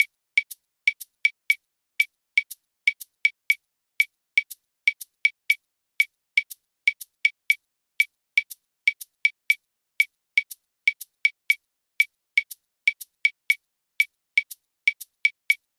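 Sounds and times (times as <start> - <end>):
guaguanco clave rhythm: 0.0 - 1.6, 2.4 - 9.6, 10.4 - 11.6, 12.4 - 13.6, 14.4 - 15.7.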